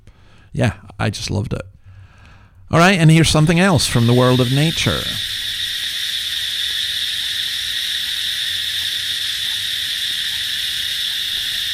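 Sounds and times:
speech: 0.5s - 1.8s, 2.7s - 5.4s
chorus of periodical cicadas: 2.8s - 11.7s.

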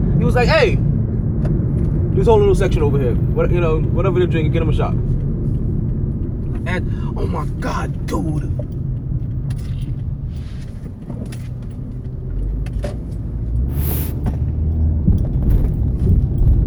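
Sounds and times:
car driving to work road rumble: 0.0s - 16.6s
speech: 0.2s - 5.1s, 6.6s - 8.7s
faint clicks and light rattles in a car: 7.5s - 13.2s, 14.2s - 16.6s.

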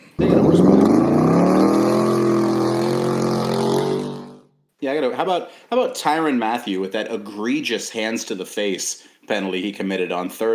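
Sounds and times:
loud truck engine revving: 0.0s - 4.4s
speech: 5.0s - 10.5s.

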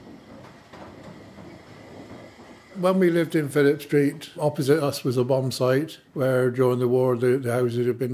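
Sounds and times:
train wheels clacking over the rails: 0.0s - 5.2s
steam train rolling into a station: 0.0s - 8.1s
speech: 2.8s - 8.1s.

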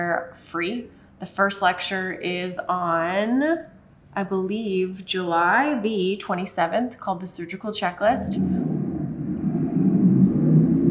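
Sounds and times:
speech: 0.0s - 8.6s
motorcycle engine rumble passing outside: 8.2s - 10.8s.

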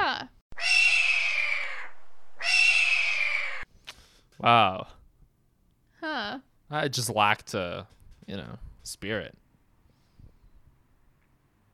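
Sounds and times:
hawk screaming: 0.6s - 3.7s
speech: 4.4s - 5.0s, 6.3s - 9.4s.

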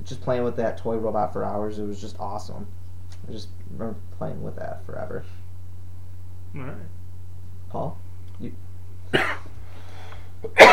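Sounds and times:
low steady hum: 0.0s - 10.7s
speech: 0.1s - 5.4s, 6.5s - 7.0s, 7.7s - 9.4s, 10.4s - 10.7s
person coughing harshly: 9.1s - 9.5s, 10.4s - 10.7s.

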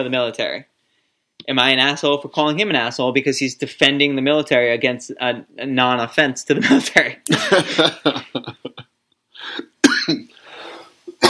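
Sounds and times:
speech: 0.0s - 0.7s, 1.4s - 10.3s
laughter: 6.7s - 8.8s
person coughing in a harsh fit with a raspy rattle: 9.4s - 10.4s, 11.1s - 11.2s.

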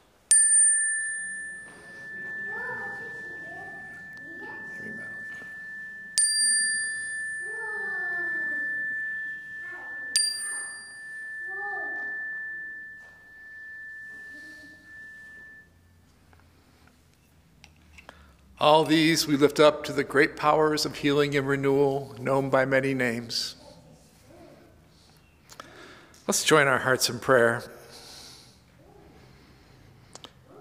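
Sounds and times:
chime struck during a worship service in a sanctuary: 0.3s - 16.1s
speech: 18.6s - 23.6s, 26.3s - 27.8s.

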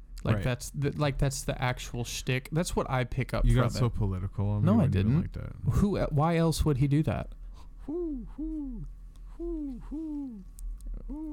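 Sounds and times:
low steady hum: 0.0s - 11.3s
speech: 0.2s - 11.3s
person imitating an owl hooting: 7.8s - 11.3s.

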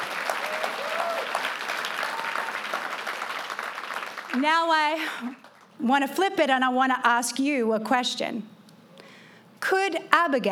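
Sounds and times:
large indoor crowd applauding: 0.0s - 4.4s
faint voices and whoops: 0.4s - 1.4s, 2.0s - 2.7s
speech: 4.4s - 8.5s, 9.6s - 10.5s.

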